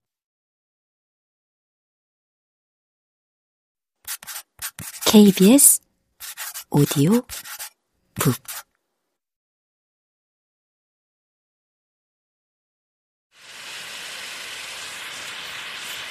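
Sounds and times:
vinyl-gloved hand peeling a dust clump off a vacuum cleaner intake: 0:04.1 - 0:05.4, 0:06.2 - 0:08.7
speech: 0:05.1 - 0:05.8, 0:06.7 - 0:07.5, 0:08.2 - 0:08.6.

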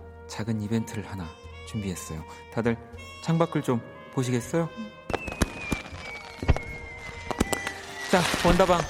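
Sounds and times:
speech: 0:00.3 - 0:05.0, 0:08.1 - 0:08.8
firework bangs: 0:05.1 - 0:08.8.

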